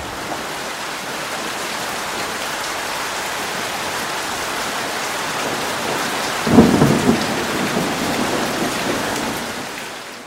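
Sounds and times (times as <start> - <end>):
steady dense rain: 0.0 - 10.2
thunder rumble: 6.4 - 9.7.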